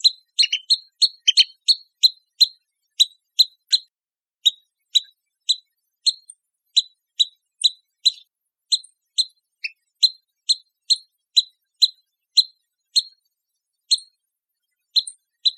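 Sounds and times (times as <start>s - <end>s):
pygmy nuthatch calling: 0.0s - 3.8s, 4.4s - 13.1s, 15.0s - 15.5s.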